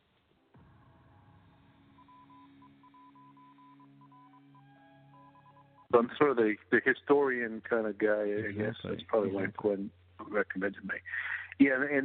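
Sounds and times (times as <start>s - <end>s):
Morse code beeping high tone: 1.9s - 5.9s
speech: 5.9s - 12.0s.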